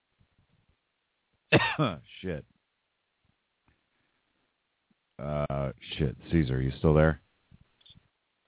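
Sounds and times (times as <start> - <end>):
sharp loud cough: 1.6 - 2.0
speech: 1.8 - 2.5, 5.2 - 7.2.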